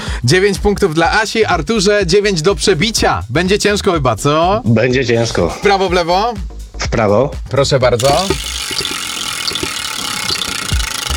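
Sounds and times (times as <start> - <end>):
speech: 0.2 - 8.9
game show prize wheel spinning: 8.0 - 11.1.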